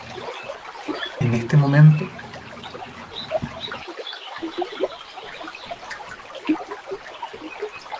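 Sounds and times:
faint bird chirps: 0.0s - 7.9s
flowing river water rushing and trickling: 0.0s - 7.9s
speech: 1.3s - 2.2s.

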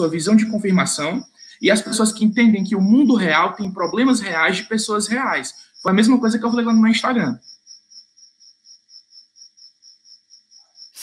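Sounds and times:
faint low hum: 0.0s - 7.4s
speech: 0.0s - 7.5s
cricket chirping: 0.0s - 11.0s.

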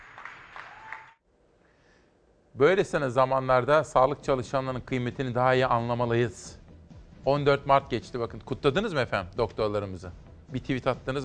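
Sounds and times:
people applauding from windows and balconies: 0.0s - 1.2s
quiet outdoor noise: 0.0s - 11.2s
speech: 2.6s - 6.6s, 7.2s - 11.2s.

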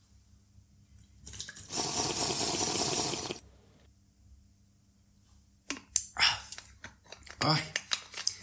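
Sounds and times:
cool water pouring into a glass: 1.3s - 3.4s
speech: 7.4s - 7.7s.

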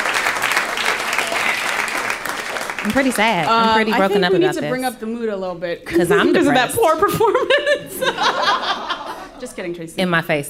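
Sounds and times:
group of people applauding: 0.0s - 4.3s
speech: 2.8s - 8.8s, 9.4s - 10.4s
laughter: 5.9s - 9.6s.

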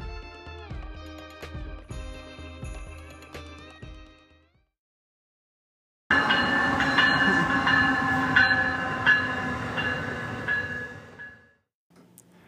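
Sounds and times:
New Jersey Transit commuter train rumbling through Princeton Junction Station: 6.1s - 11.5s.

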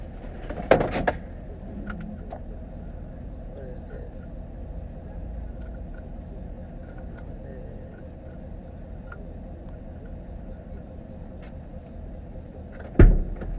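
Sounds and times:
steady low engine hum: 0.0s - 13.5s
truck door clunking open: 0.4s - 2.0s, 12.8s - 13.5s
truck door slamming shut: 12.9s - 13.5s.

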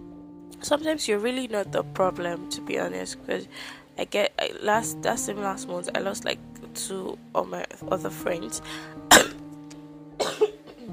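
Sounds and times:
speech: 0.6s - 9.0s
person coughing dryly: 9.1s - 9.4s, 10.2s - 10.9s.

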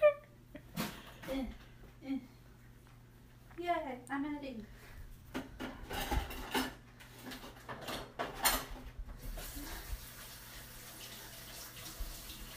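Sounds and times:
speech: 1.3s - 2.3s, 3.6s - 4.8s
dishes and utensils clinking and clattering: 5.4s - 8.8s
tap water running into a sink while washing dishes: 9.3s - 12.5s.

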